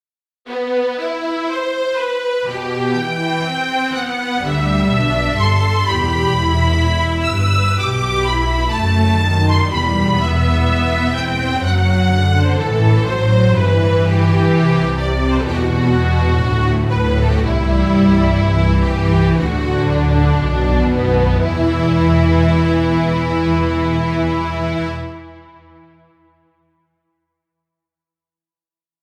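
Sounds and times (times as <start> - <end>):
cellos: 0.5 - 25.9
violins: 0.5 - 26.0
double basses: 4.4 - 25.4.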